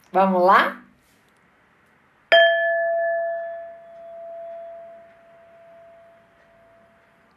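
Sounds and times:
speech: 0.1 - 0.8
meditation bell struck and ringing: 2.3 - 6.9.

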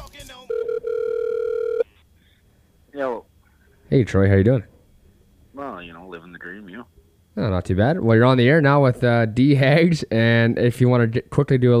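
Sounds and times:
telephone ringing with an electronic tone for incoming call: 0.4 - 1.9
speech: 3.9 - 4.7, 5.8 - 11.7.

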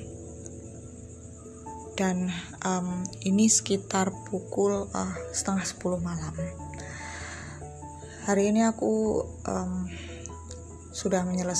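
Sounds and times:
crickets chirping outside at night: 0.0 - 11.5
speech: 2.0 - 6.6, 8.3 - 10.1, 11.0 - 11.5.

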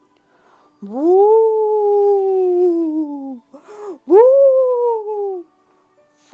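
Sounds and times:
speech: 0.8 - 1.4
voice imitating ghost howling: 0.8 - 3.4, 4.0 - 5.4.

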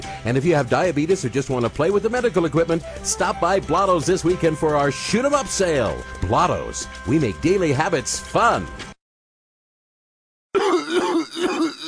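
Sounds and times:
speech: 0.2 - 8.9
harsh raspy rattling cough: 10.6 - 11.8.

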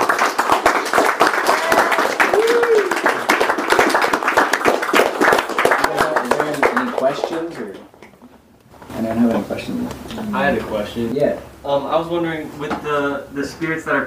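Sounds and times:
room full of people applauding: 0.0 - 8.0
speech: 10.5 - 14.0.

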